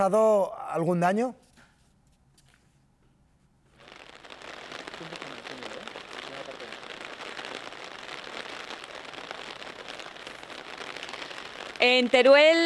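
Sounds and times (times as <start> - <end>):
speech: 0.0 - 1.5, 11.8 - 12.6
heavy rain falling: 3.9 - 12.6.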